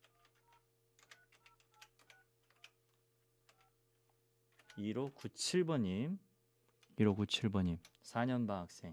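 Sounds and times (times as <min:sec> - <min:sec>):
electronic keypad tones of a phone number being dialed: 0:00.0 - 0:03.8, 0:04.5 - 0:05.3
speech: 0:04.8 - 0:06.3, 0:07.0 - 0:08.9.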